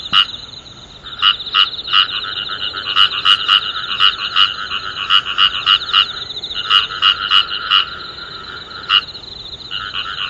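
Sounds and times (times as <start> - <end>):
frog chorus croaking: 0.0 - 10.2.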